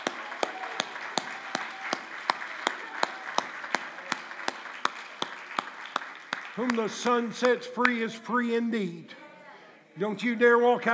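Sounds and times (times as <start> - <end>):
crowd clapping hands in a regular rhythm: 0.0 - 8.0
speech: 6.6 - 9.2, 10.0 - 10.9.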